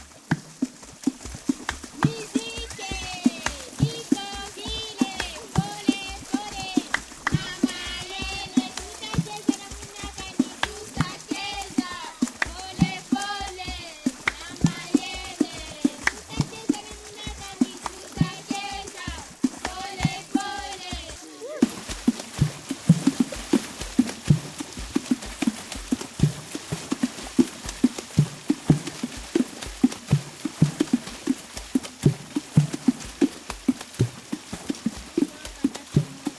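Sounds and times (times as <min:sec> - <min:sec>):
hands beating a rhythm on river water: 0:00.0 - 0:36.3
people singing along over drumming: 0:02.0 - 0:21.7.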